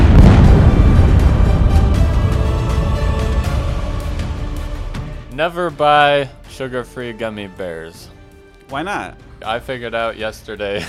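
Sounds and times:
bomb explosion sound effect: 0:00.0 - 0:05.4
speech: 0:05.4 - 0:10.8.

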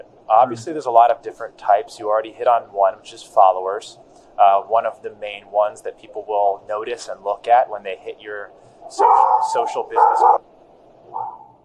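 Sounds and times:
speech: 0:00.3 - 0:10.5
dog barking: 0:09.0 - 0:10.4, 0:11.1 - 0:11.5.

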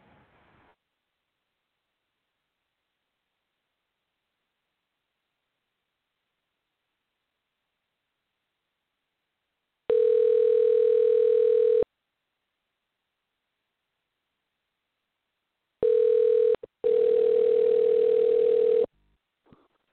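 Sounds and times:
telephone dial tone while dialing back from a remote phone: 0:09.9 - 0:11.8, 0:15.8 - 0:18.9.

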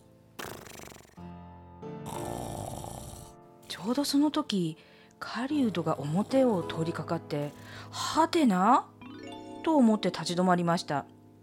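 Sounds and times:
loud snoring: 0:00.4 - 0:01.2, 0:02.0 - 0:03.4, 0:05.7 - 0:06.9
speech: 0:03.8 - 0:08.9, 0:09.6 - 0:11.2.

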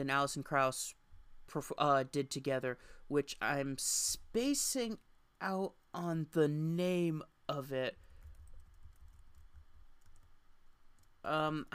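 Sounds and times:
speech: 0:00.0 - 0:08.0, 0:11.2 - 0:11.7
typing on a computer keyboard: 0:08.1 - 0:10.3.

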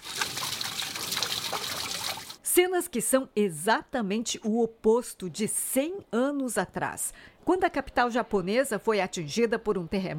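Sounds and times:
water pouring from the spout of an emergency drinking water well: 0:00.0 - 0:02.4
speech: 0:02.6 - 0:10.1.

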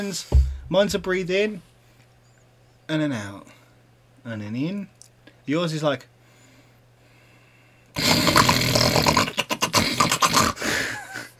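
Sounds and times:
speech: 0:00.0 - 0:01.7, 0:02.9 - 0:03.6, 0:04.2 - 0:06.1
voice imitating loud rapid snoring with rasping snore and snorting pulses: 0:08.0 - 0:10.6.

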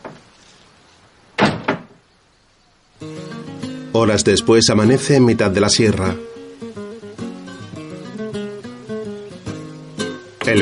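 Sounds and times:
man shutting the wooden door of a house: 0:01.4 - 0:02.0
speech: 0:04.0 - 0:06.3.

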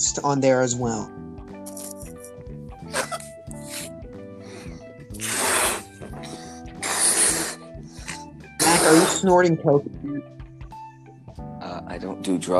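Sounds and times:
speech: 0:00.1 - 0:01.3, 0:09.2 - 0:10.4, 0:12.0 - 0:12.5
breath blown hard into a balloon: 0:01.6 - 0:02.2, 0:02.9 - 0:09.3.

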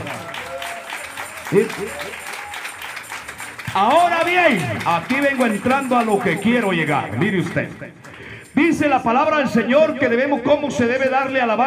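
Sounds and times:
loud shout or cheer: 0:00.0 - 0:02.7, 0:04.0 - 0:05.1
audience clapping hands in worship: 0:00.0 - 0:08.8
speech: 0:01.5 - 0:02.3, 0:03.7 - 0:08.0, 0:08.6 - 0:11.6.

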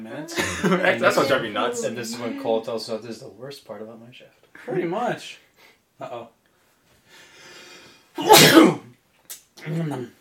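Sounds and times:
speech: 0:00.0 - 0:05.4, 0:06.0 - 0:06.4, 0:08.2 - 0:08.8, 0:09.6 - 0:10.1
person sniffing: 0:07.1 - 0:08.8
single loud sneeze: 0:08.2 - 0:08.9.

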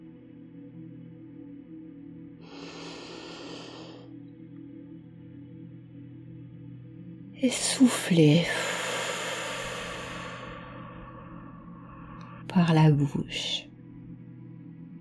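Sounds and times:
steady low music bed: 0:00.0 - 0:14.9
long deep breath in through the nose during a guided sleep meditation: 0:02.4 - 0:04.1, 0:08.5 - 0:12.4
speech: 0:07.4 - 0:08.6, 0:12.7 - 0:13.7.

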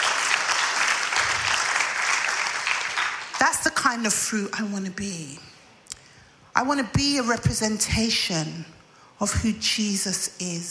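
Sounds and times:
audience clapping hands: 0:00.0 - 0:03.4
speech: 0:03.5 - 0:05.6, 0:06.6 - 0:10.6.

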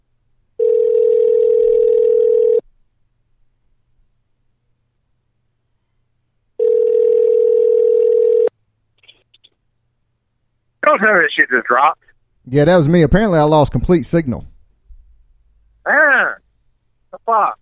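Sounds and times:
telephone ringback tone with long steady electronic rings: 0:00.6 - 0:02.6, 0:06.6 - 0:08.5
speech: 0:11.0 - 0:14.5, 0:17.1 - 0:17.6.

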